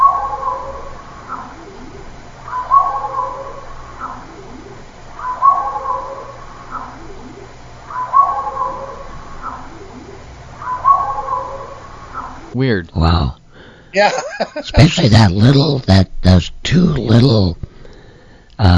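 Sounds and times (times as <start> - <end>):
crow calling: 0.0 - 12.6
low hum: 0.0 - 18.7
speech: 12.6 - 17.6, 18.6 - 18.7
laughter: 14.0 - 15.9.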